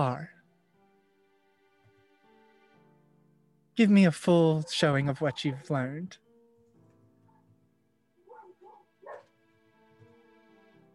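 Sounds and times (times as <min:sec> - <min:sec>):
speech: 0:00.0 - 0:00.3, 0:03.8 - 0:06.2
dog barking down the hall: 0:04.6 - 0:05.8, 0:07.3 - 0:07.5, 0:08.2 - 0:09.3.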